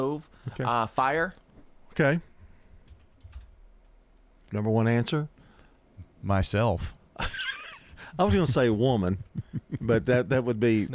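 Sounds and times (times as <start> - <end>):
speech: 0.0 - 1.4, 2.0 - 2.3, 4.5 - 5.4, 6.2 - 7.5, 8.2 - 10.9
typing on a computer keyboard: 2.8 - 3.6
laughter: 7.2 - 10.4.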